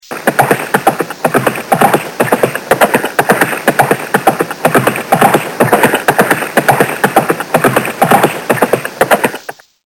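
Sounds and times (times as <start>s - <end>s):
horse galloping: 0.1s - 9.6s.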